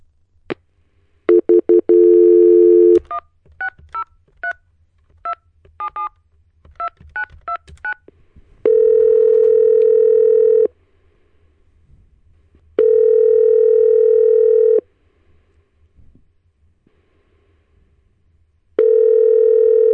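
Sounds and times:
telephone dial tone: 1.4 - 3.0, 8.7 - 10.7, 12.8 - 14.8, 18.8 - 19.9.

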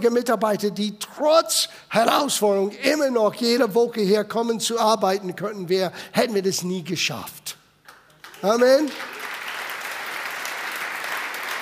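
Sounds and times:
speech: 0.0 - 7.6, 8.4 - 9.2
audience applause: 7.9 - 11.6.

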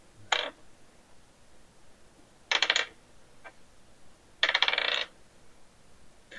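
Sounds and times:
dice tumbling and bouncing onto a keyboard during a charisma saving roll: 0.3 - 0.6, 2.5 - 3.0, 4.4 - 5.1.

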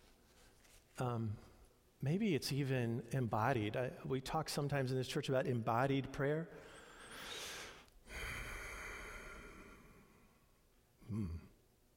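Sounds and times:
speech: 1.0 - 6.8
preacher drawing a sharp breath in through the nose during a church sermon: 6.6 - 10.1.

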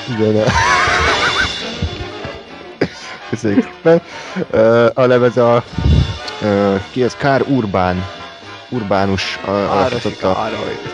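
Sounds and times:
speech: 0.1 - 0.8, 3.3 - 10.9
laughter: 0.3 - 4.8
horse giving a loud wavering whinny: 0.5 - 1.9
dull low thuds: 1.6 - 2.5, 5.6 - 6.4.

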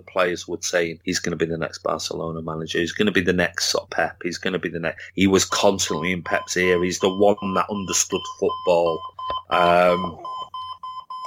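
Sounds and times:
speech: 0.0 - 10.4
alarm clock beeping with bright electronic tones: 5.9 - 11.2.

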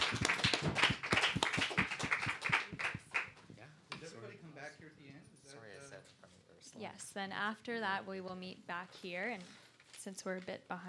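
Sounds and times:
applause for panelists at a community dialogue session: 0.0 - 3.4
speech: 7.2 - 10.8.

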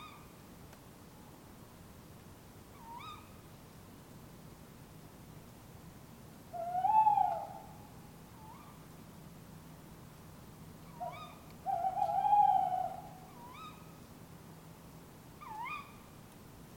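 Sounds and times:
two tawny owls calling in an urban setting in Surrey, England: 0.0 - 0.3, 2.7 - 3.4, 6.5 - 8.9, 10.8 - 14.0, 15.4 - 16.1.

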